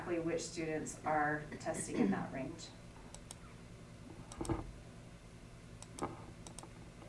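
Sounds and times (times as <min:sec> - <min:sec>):
speech: 0:00.1 - 0:02.8, 0:04.4 - 0:04.6
quiet computer mouse clicks: 0:03.1 - 0:03.5, 0:04.3 - 0:04.7, 0:05.8 - 0:07.0.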